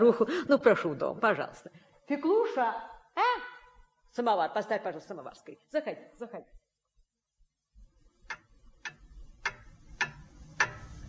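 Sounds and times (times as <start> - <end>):
speech: 0.0 - 3.4, 4.2 - 6.6
clock ticking inside a home in town: 8.2 - 11.0.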